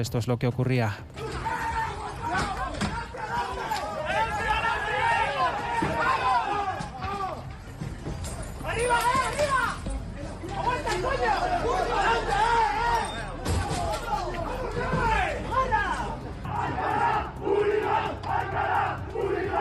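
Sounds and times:
speech: 0.0 - 1.6
crowd of football supporters shouting and yelling in a brawl: 1.0 - 19.6
bangs during a scuffle: 1.1 - 15.5.

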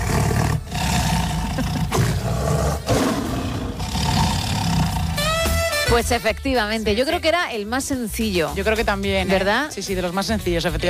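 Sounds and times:
tiger roaring: 0.0 - 5.5
speech: 6.0 - 10.8.

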